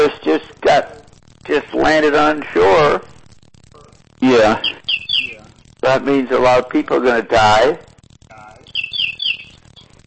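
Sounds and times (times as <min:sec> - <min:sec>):
low murmur: 0:00.0 - 0:10.0
speech: 0:01.9 - 0:03.1, 0:04.2 - 0:04.7, 0:05.8 - 0:07.8
bird chirping and singing: 0:04.5 - 0:05.4, 0:08.6 - 0:09.9.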